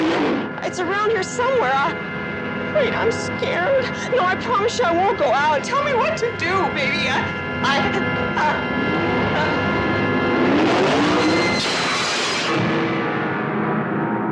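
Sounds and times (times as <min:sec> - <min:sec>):
car engine revving: 0:00.0 - 0:00.6, 0:08.1 - 0:14.0
speech: 0:00.7 - 0:02.2, 0:02.8 - 0:09.6
tires screeching: 0:10.2 - 0:13.0.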